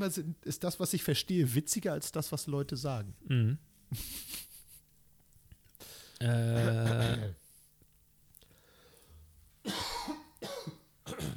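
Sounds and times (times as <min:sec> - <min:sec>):
speech: 0:00.0 - 0:04.5, 0:06.2 - 0:07.4
harsh coughs: 0:06.5 - 0:07.4, 0:09.7 - 0:11.3.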